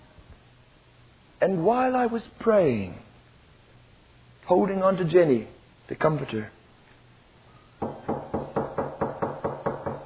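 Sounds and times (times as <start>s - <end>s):
speech: 1.4s - 3.1s, 4.5s - 6.6s
firm knocking on a door: 7.8s - 10.0s.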